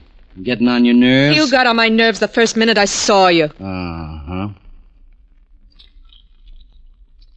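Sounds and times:
speech: 0:00.4 - 0:03.9
person chewing gum: 0:05.7 - 0:07.3.

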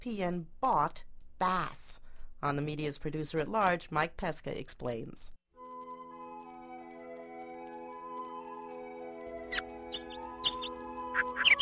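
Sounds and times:
speech: 0:00.0 - 0:05.4
birds chirping in the hazy early morning by a shore: 0:09.3 - 0:11.5.

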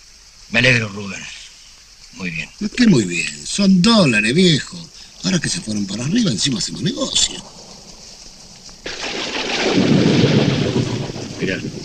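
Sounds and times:
heavy rain: 0:00.0 - 0:11.8
speech: 0:00.5 - 0:01.4, 0:02.1 - 0:07.6, 0:10.7 - 0:11.8
deep rolling rumble of thunder: 0:05.9 - 0:11.8.

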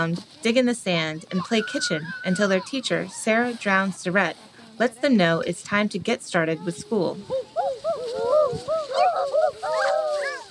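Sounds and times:
speech: 0:00.0 - 0:07.5
children hooting like owls in answer: 0:01.4 - 0:03.2, 0:07.3 - 0:10.4
kindergarten teacher hooting like an owl: 0:07.3 - 0:10.4.

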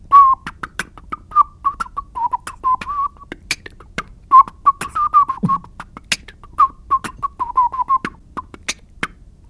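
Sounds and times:
beatboxing with percussive hits and clicks: 0:00.0 - 0:09.4
melodic whistling: 0:00.1 - 0:00.6, 0:01.2 - 0:03.4, 0:04.3 - 0:05.8, 0:06.5 - 0:08.2.

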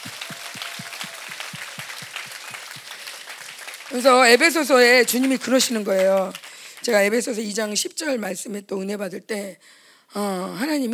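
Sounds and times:
large crowd audience applauding: 0:00.0 - 0:07.2
speech: 0:03.9 - 0:10.9.

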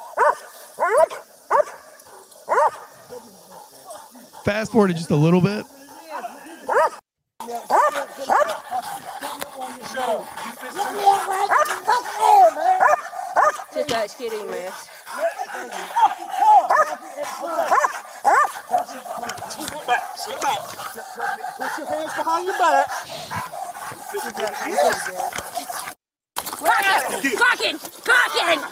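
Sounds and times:
police dog barking and yelping while biting a suspect: 0:00.0 - 0:04.6, 0:05.9 - 0:26.0
speech: 0:04.4 - 0:05.8, 0:14.0 - 0:17.9, 0:19.9 - 0:23.5, 0:24.1 - 0:25.3, 0:27.1 - 0:28.6
people shouting: 0:10.7 - 0:13.6, 0:15.2 - 0:20.6, 0:26.5 - 0:28.6.

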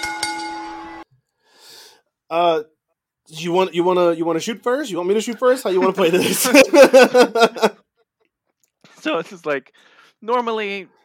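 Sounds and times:
bell ringing: 0:00.0 - 0:01.0
soft breathy exhale: 0:01.4 - 0:02.1
speech: 0:02.3 - 0:02.7, 0:03.3 - 0:07.8, 0:09.0 - 0:11.0
laughter: 0:05.8 - 0:07.9.

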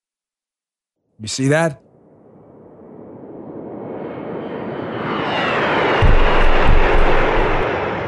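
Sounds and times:
speech: 0:01.2 - 0:01.8
Russian jet roaring past a drone: 0:01.9 - 0:08.0.

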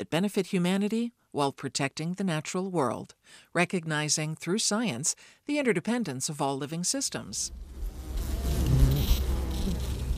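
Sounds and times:
speech: 0:00.0 - 0:08.6
bees buzzing in an almond grove in California: 0:07.5 - 0:10.1.

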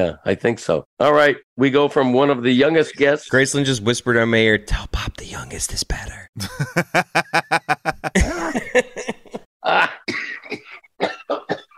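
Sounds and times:
speech: 0:00.0 - 0:11.4
man coughing: 0:06.4 - 0:06.8, 0:08.0 - 0:11.7
laughter: 0:06.4 - 0:10.0
man clearing throat: 0:08.1 - 0:11.7.

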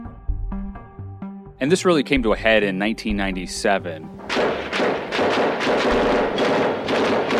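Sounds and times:
speech: 0:01.6 - 0:06.2
automatic assault-style rifle fire during a shootout in a residential neighborhood: 0:04.2 - 0:07.3.

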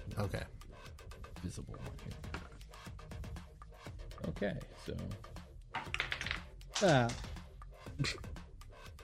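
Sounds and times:
speech: 0:00.2 - 0:00.6, 0:01.4 - 0:02.4, 0:04.2 - 0:05.3, 0:06.8 - 0:07.3, 0:08.0 - 0:08.3
dice bouncing and falling off a table: 0:05.7 - 0:07.4.

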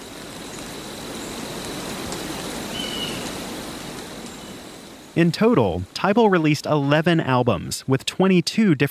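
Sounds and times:
gentle rain in a pine forest: 0:00.0 - 0:08.8
speech: 0:05.2 - 0:08.8.

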